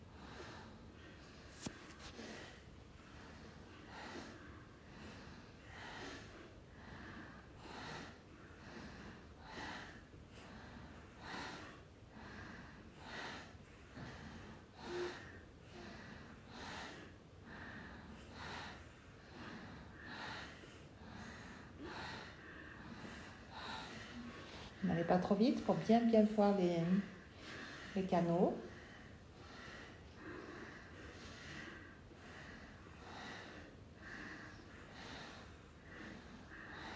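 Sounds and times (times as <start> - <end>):
rapid nasal breathing from an alternate-nostril breathing exercise: 0.0 - 36.9
speech: 25.0 - 27.1, 28.0 - 28.7.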